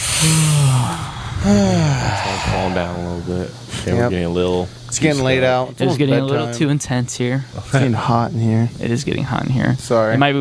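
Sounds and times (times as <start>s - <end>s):
long breathy yawn with drawn-out low vocal tone: 0.0s - 3.9s
speech: 0.2s - 10.3s.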